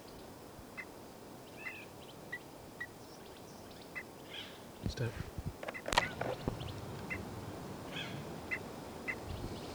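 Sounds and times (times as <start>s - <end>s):
steady outdoor background: 0.0s - 9.7s
bird alarm calls: 4.0s - 9.7s
speech: 4.9s - 5.4s.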